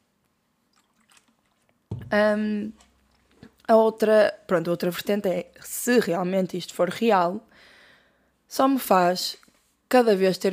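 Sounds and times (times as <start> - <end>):
sipping water: 0.6 - 3.7
sudden louder low thump: 1.9 - 2.2
speech: 2.1 - 2.8, 3.7 - 7.7, 8.5 - 10.5.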